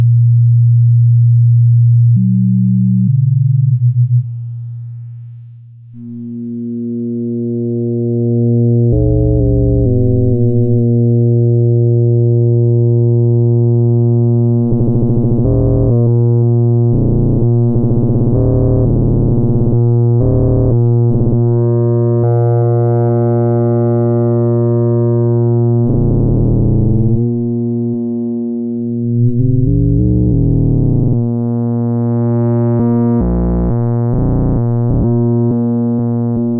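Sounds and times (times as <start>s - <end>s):
synthesized sine tones with varying modulation: 0.0s - 36.5s.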